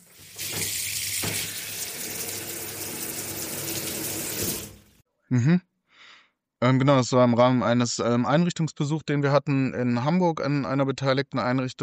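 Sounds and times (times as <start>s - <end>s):
warm shower water running: 0.0s - 5.0s
speech: 5.3s - 5.7s, 6.6s - 11.8s.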